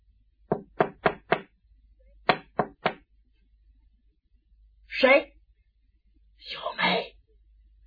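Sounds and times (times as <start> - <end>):
knocking on a window: 0.5 - 1.5, 2.3 - 3.0.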